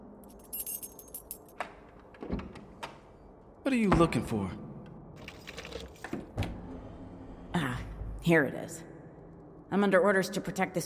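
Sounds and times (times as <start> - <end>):
keys jangling: 0.2 - 1.6
speech: 3.7 - 4.6, 8.3 - 8.9, 9.7 - 10.8.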